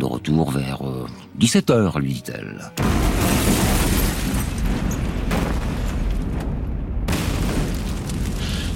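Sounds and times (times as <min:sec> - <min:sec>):
speech: 0:00.0 - 0:03.6
bomb explosion with heavy boom and rumbling roar: 0:02.8 - 0:08.7.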